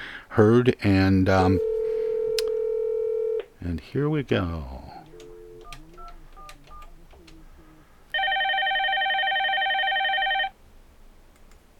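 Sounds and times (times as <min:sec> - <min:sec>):
speech: 0:00.4 - 0:01.7, 0:03.6 - 0:05.0
phone ringing tone: 0:01.6 - 0:03.4, 0:05.1 - 0:06.9, 0:08.1 - 0:10.6.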